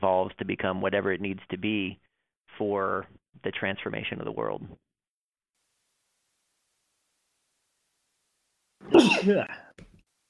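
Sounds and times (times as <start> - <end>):
speech: 0.0 - 4.8, 8.8 - 9.6
person sneezing: 8.8 - 9.8.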